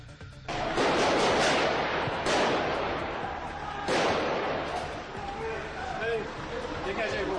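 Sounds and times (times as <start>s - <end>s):
gunshots from a police raid in Molenbeek, Brussels, Belgium: 0.5s - 5.2s
loud bangs from a police raid in Molenbeek, Brussels, Belgium: 0.5s - 6.2s
voices: 3.0s - 7.3s.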